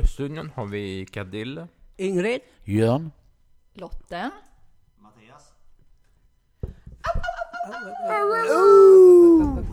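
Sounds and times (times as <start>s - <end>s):
speech: 0.0s - 3.2s, 3.8s - 4.5s, 7.0s - 9.7s
human voice imitating a drawn-out crowing call: 8.2s - 9.7s.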